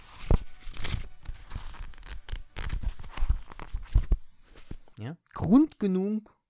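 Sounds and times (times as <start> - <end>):
pages of a paper notebook being flipped: 0.0 - 5.0
speech: 5.0 - 6.4.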